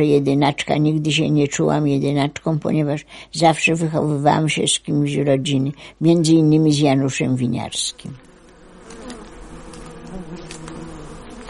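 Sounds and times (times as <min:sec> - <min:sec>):
speech: 0:00.0 - 0:08.3
many bees buzzing around a flowering hundred-year-old linden tree: 0:06.6 - 0:11.4.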